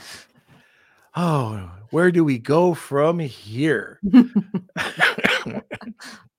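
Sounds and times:
speech: 0:01.2 - 0:06.3
laughter: 0:04.0 - 0:06.2
person coughing with harsh throaty hacks: 0:04.8 - 0:06.2.

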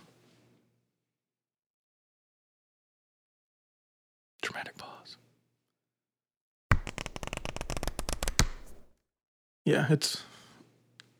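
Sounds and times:
speech: 0:04.5 - 0:05.3, 0:09.7 - 0:10.3
thumbing through a deck of cards: 0:06.7 - 0:08.9.

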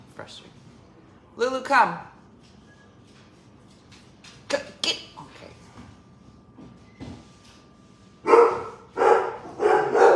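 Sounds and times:
speech: 0:00.2 - 0:00.6, 0:01.4 - 0:02.1
dog barking: 0:08.2 - 0:10.1.

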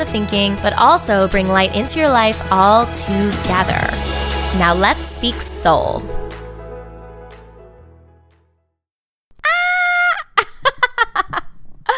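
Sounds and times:
speech: 0:00.0 - 0:06.2
person shrieking and yelping: 0:09.4 - 0:10.4.

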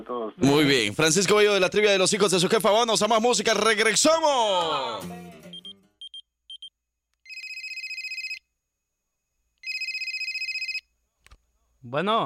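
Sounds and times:
speech: 0:00.0 - 0:05.5, 0:11.9 - 0:12.2
short beeps: 0:05.5 - 0:06.7
telephone ringing with trilling electronic bursts: 0:07.3 - 0:08.4, 0:09.6 - 0:10.9.

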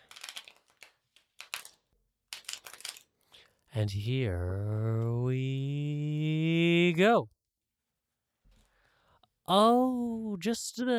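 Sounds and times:
tarot cards being shuffled: 0:00.0 - 0:03.6
speech: 0:03.8 - 0:07.4, 0:09.5 - 0:10.9.

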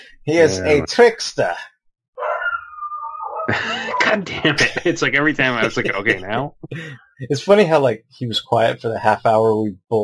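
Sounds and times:
speech: 0:00.2 - 0:01.7, 0:03.5 - 0:10.0
dog barking excitedly: 0:02.2 - 0:02.6
dog giving a drawn-out whining yowl: 0:02.2 - 0:03.5
laughter: 0:03.5 - 0:07.0.

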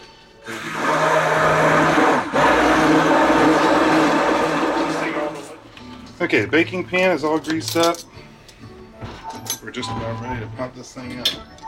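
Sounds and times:
kitchen blender whirring while mixing batter: 0:00.5 - 0:05.6
speech: 0:06.3 - 0:08.3, 0:09.8 - 0:11.6.

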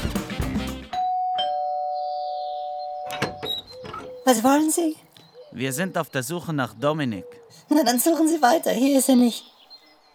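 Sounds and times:
two-tone doorbell chime: 0:01.0 - 0:03.6
speech: 0:04.2 - 0:09.6.

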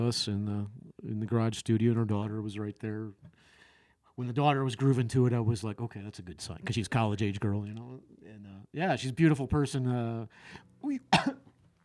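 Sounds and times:
speech: 0:00.0 - 0:03.3, 0:04.2 - 0:11.4
cough: 0:11.1 - 0:11.5.

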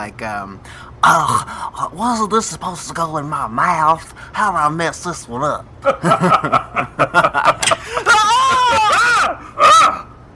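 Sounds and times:
speech: 0:00.0 - 0:09.8
laughter: 0:05.8 - 0:09.0
person screaming: 0:07.7 - 0:10.1.

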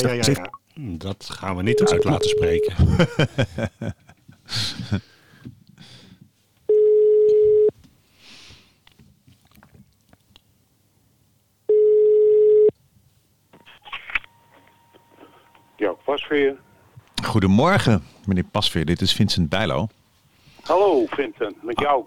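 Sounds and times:
laughter: 0:00.0 - 0:00.5, 0:01.7 - 0:05.1
speech: 0:00.0 - 0:05.1, 0:15.8 - 0:20.0, 0:20.6 - 0:22.0
telephone ringback tone: 0:01.7 - 0:02.7, 0:06.7 - 0:07.7, 0:11.7 - 0:12.7.

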